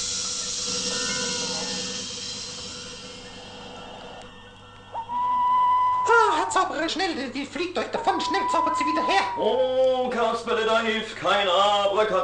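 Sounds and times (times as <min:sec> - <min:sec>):
soft airy hissing: 0:00.0 - 0:05.4
owl hooting: 0:00.6 - 0:06.8, 0:07.9 - 0:09.7
speech: 0:06.5 - 0:12.2.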